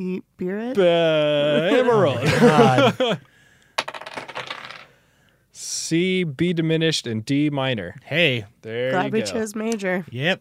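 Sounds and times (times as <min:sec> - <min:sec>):
speech: 0:00.0 - 0:03.3, 0:05.9 - 0:10.3
laughter: 0:01.3 - 0:03.2
dice clattering onto a hard surface: 0:03.8 - 0:04.9.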